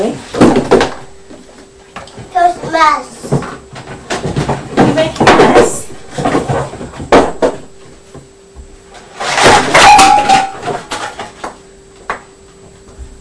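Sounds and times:
speech: 0.0 - 0.4, 2.8 - 3.1
cardboard boxes pulled out of a cupboard and dropped onto the floor: 0.3 - 1.4, 3.3 - 7.9, 9.2 - 11.5.

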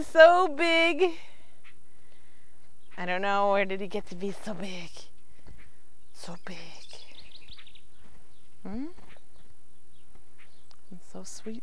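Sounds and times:
speech: 0.0 - 1.3, 3.0 - 5.1, 6.2 - 6.8, 8.6 - 9.0, 11.1 - 11.6
quiet outdoor noise: 0.0 - 11.6
faint bird chirps outdoors: 4.8 - 11.6.

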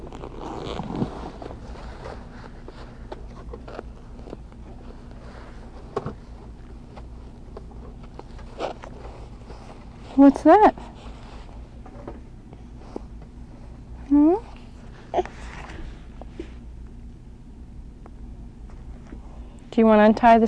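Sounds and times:
pants zipper pulled up and down: 0.0 - 2.6, 3.5 - 4.4, 8.4 - 9.0
steady low hum: 0.0 - 20.4
speech: 10.2 - 10.9, 19.8 - 20.4.

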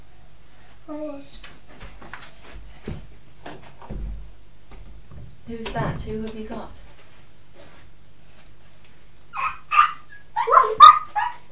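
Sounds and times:
speech: 5.5 - 6.8
dog barking: 9.4 - 11.4.

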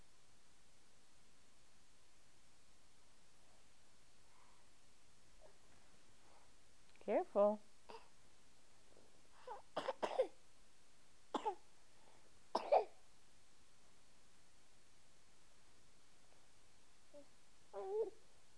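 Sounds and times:
quiet hiss: 0.0 - 18.5
speech: 7.1 - 7.7
person coughing: 9.8 - 10.3.

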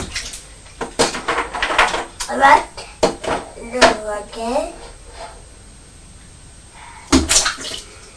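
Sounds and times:
water splashing in a bathtub: 0.0 - 3.2, 7.1 - 8.1.

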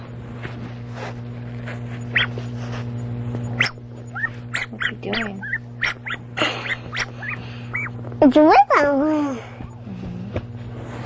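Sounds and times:
steady electrical hum: 0.0 - 11.0
cat making short high chirping mews: 2.1 - 2.3, 3.4 - 8.0
speech: 8.3 - 8.6.

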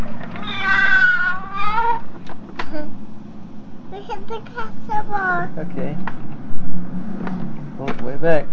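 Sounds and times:
low hum: 0.0 - 8.5
cat meowing with a long downward-sliding meow: 0.4 - 2.1
speech: 4.3 - 6.3, 7.9 - 8.5.

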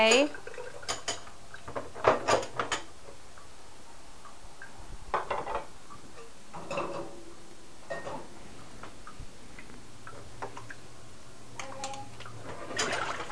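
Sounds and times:
speech: 0.0 - 0.4
dirty dishes clattering and clinking in a basket: 0.0 - 2.9, 5.2 - 7.3, 7.9 - 8.3, 12.5 - 13.2.

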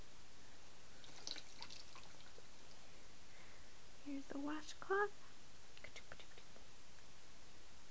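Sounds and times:
hiss: 0.0 - 7.8
water poured out of a basin: 1.0 - 2.8
speech: 4.1 - 5.3.

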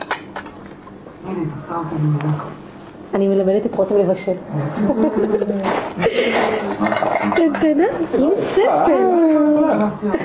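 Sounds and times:
speech: 1.2 - 10.2
small plates and dishes clinking beside a cutting board: 5.6 - 8.0.

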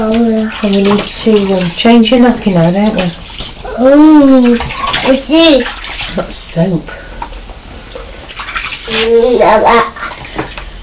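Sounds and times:
water running over a child's hands being rinsed: 0.0 - 3.7, 4.3 - 6.4, 8.3 - 9.4
speech: 0.0 - 7.0, 8.9 - 9.9.

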